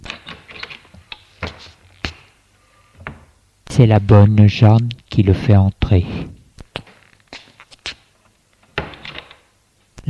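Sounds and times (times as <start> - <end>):
speech: 3.8 - 6.4
apartment door latch and handle clicks and rattles: 8.7 - 9.5
sharp apartment door clacks: 8.8 - 9.5.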